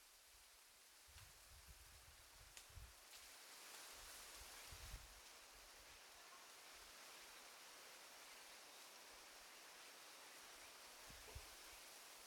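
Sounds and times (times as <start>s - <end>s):
wind: 0.0s - 12.2s.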